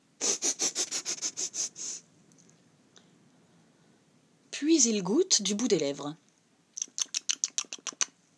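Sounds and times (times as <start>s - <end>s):
person sniffing the smell of food: 0.2s - 2.1s
speech: 4.8s - 6.2s.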